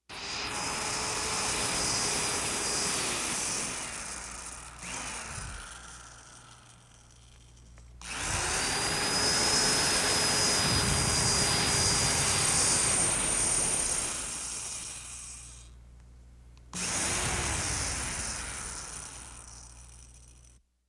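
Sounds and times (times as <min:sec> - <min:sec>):
power drill for household DIY work: 0:00.1 - 0:15.8, 0:16.6 - 0:20.6.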